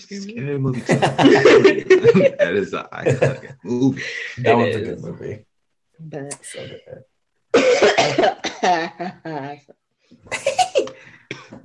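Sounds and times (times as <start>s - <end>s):
speech: 0.0s - 11.6s
laughter: 0.8s - 4.5s, 7.8s - 9.7s
person coughing after taking a dab: 7.6s - 8.7s.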